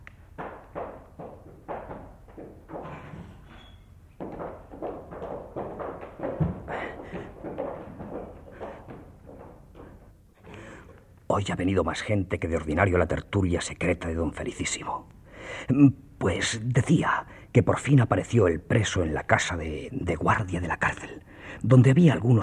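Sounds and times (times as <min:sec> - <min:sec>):
regular knocks and thumps: 0:00.0 - 0:10.2
soft bumps: 0:00.0 - 0:10.3
door opening with a heavy thud and clatter: 0:02.7 - 0:04.0
speech: 0:11.4 - 0:22.4.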